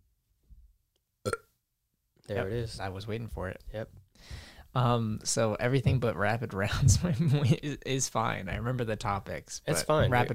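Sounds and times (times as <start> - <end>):
loud throaty voiced burp: 1.2 - 1.5
speech: 2.3 - 10.3.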